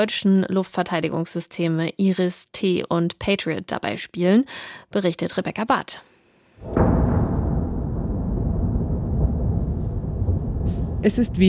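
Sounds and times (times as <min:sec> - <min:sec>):
speech: 0:00.0 - 0:07.0, 0:11.0 - 0:11.4
explosion in Kyiv at night during a missile attack: 0:06.6 - 0:11.4.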